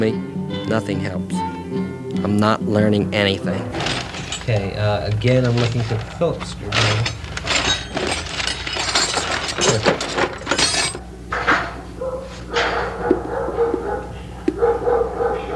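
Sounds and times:
speech: 0.0s - 1.5s, 2.2s - 3.8s, 4.5s - 7.0s
metal objects clinking and rattling: 3.6s - 11.7s
dogs barking: 10.6s - 15.5s.

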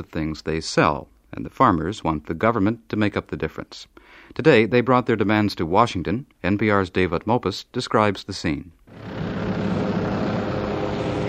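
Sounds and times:
speech: 0.0s - 9.1s
police helicopters hovering over a farmers' protest in Washington: 8.9s - 11.2s.

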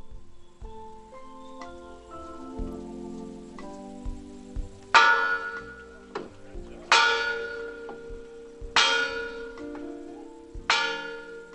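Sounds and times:
faint noise: 0.0s - 11.5s
large church bell rung at a commemoration: 4.9s - 6.2s, 6.8s - 11.5s.

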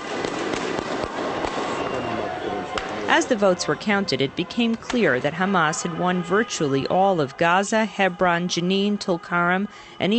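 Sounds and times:
firecrackers set off in the streets celebrating overnight: 0.0s - 2.1s
street noise: 0.0s - 10.1s
crowd murmur: 1.2s - 10.1s
speech: 3.2s - 10.1s.

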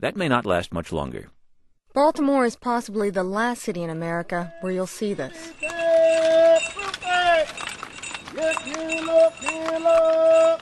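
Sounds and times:
speech: 0.0s - 5.8s, 8.3s - 10.6s
horse hooves clip-clopping along a Baltimore street: 5.3s - 10.6s
horse-drawn fruit and vegetable wagon rolling: 5.3s - 10.6s
man's sing-song street calls about produce for sale: 5.3s - 10.6s.

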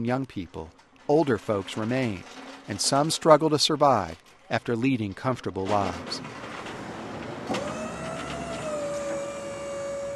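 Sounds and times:
speech: 0.0s - 6.4s
truck lift electric motor whine lowering pallets of food boxes: 7.4s - 10.1s.

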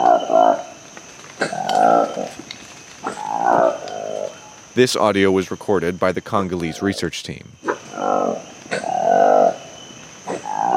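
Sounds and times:
colobus monkey roar: 0.0s - 0.7s, 1.4s - 2.4s, 3.0s - 4.5s, 7.6s - 10.7s
high-pitched insect drone from the surrounding forest: 0.0s - 10.7s
speech: 4.8s - 8.5s.

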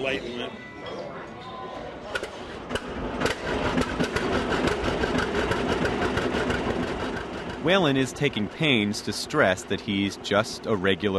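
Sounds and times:
speech: 0.0s - 1.0s, 7.6s - 11.1s
tractor engine running during a tractor ride in a parking lot: 2.9s - 9.0s.

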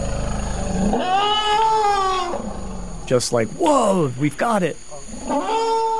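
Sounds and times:
forest elephant loud drawn-out wavering tonal call: 0.0s - 3.1s, 5.1s - 5.9s
forest elephant deep throbbing rumble: 0.0s - 5.9s
speech: 0.8s - 1.5s, 3.1s - 5.6s.

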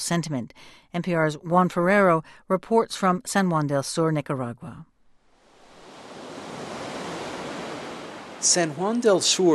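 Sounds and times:
speech: 0.1s - 4.9s, 8.4s - 9.5s
ocean waves crashing in a bay: 5.3s - 9.5s.

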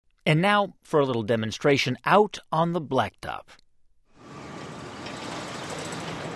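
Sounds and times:
speech: 0.2s - 3.6s
normal car passing at about 20 miles per hour on a downtown street: 4.2s - 6.3s.

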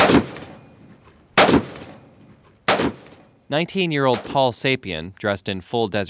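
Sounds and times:
gunshots from soldiers training at a desert firing range: 0.0s - 0.8s, 1.4s - 3.3s, 4.0s - 4.5s
speech: 3.5s - 6.0s.

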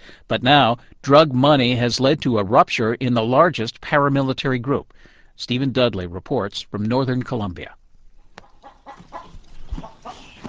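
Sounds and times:
speech: 0.3s - 7.8s
rooster clucking beneath a barn in a remote mountain town: 8.2s - 10.4s.

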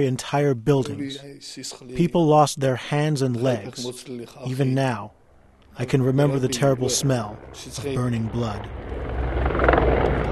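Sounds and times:
speech: 0.0s - 5.2s, 5.8s - 9.4s
Russian Mi-24 Hind attack helicopters flying low over a battlefield in Georgia: 5.1s - 10.2s.

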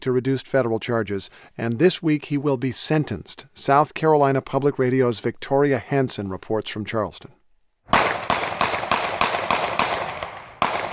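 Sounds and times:
speech: 0.0s - 8.1s
gunshots from a recorded police shooting: 7.9s - 10.9s.

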